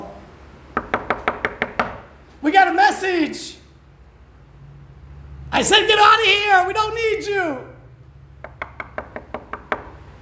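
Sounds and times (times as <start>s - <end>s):
knuckles knocking on wood: 0.8s - 2.1s, 8.4s - 10.1s
speech: 2.4s - 3.6s, 5.5s - 7.7s.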